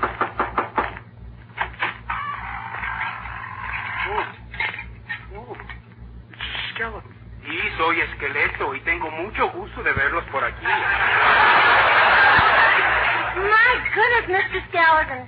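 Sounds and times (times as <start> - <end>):
sharp knocks on a door: 0.0 - 1.0
steady low hum: 0.9 - 15.2
speech: 8.0 - 11.5, 13.7 - 15.2
laughter: 10.5 - 14.8.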